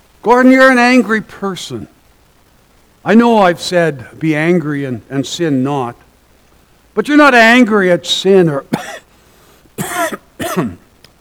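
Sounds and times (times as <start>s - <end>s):
speech: 0.2s - 2.0s, 3.0s - 6.0s, 7.0s - 9.0s
person coughing: 8.8s - 9.1s, 9.8s - 10.9s.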